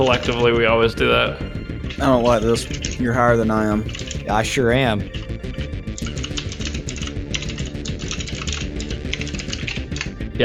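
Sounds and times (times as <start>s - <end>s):
speech: 0.0s - 5.7s
rapid forceful typing on a computer keyboard: 6.0s - 10.2s.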